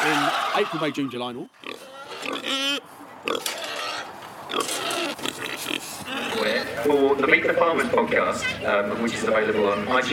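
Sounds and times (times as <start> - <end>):
speech: 0.0 - 3.7, 4.5 - 10.1
Jersey cow calling in milking parlour: 0.0 - 6.8.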